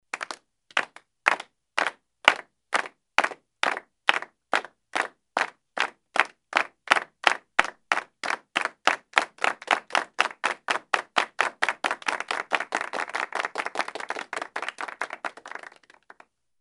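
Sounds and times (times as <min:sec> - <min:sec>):
people clapping in unison: 0:00.1 - 0:16.4.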